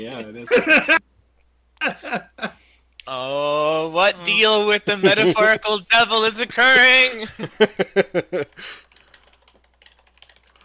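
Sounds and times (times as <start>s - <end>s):
speech: 0.0s - 1.1s, 1.8s - 2.3s, 4.0s - 8.8s
laughter: 0.4s - 1.0s, 4.7s - 5.8s, 6.6s - 8.7s
typing on a computer keyboard: 8.4s - 10.6s.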